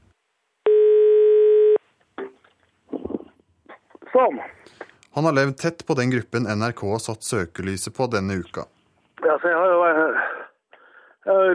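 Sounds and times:
telephone ringing tone while placing a call: 0.7 - 1.8
speech: 4.2 - 8.8, 9.4 - 10.3, 11.2 - 11.5.

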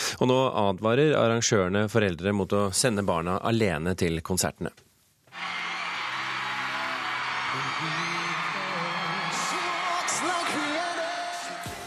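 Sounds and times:
speech: 0.2 - 5.6, 7.6 - 8.4
massive concert crowd cheering: 5.3 - 11.8
shrill high-pitched shrieks and whoops: 5.3 - 11.8.

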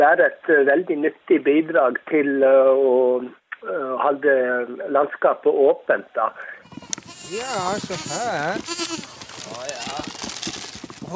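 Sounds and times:
speech: 0.0 - 10.1
herd of goats' hooves knocking on hard ground while climbing: 6.6 - 11.1.

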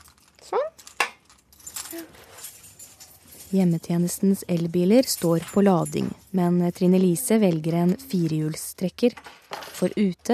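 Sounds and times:
bunch of keys jangling onto a hook: 0.0 - 8.1
speech: 1.9 - 2.5, 3.5 - 10.3.

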